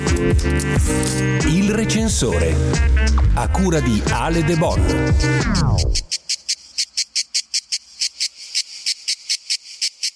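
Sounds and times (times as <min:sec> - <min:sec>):
speech: 0:00.2 - 0:06.1
cicadas chirping: 0:05.8 - 0:10.1.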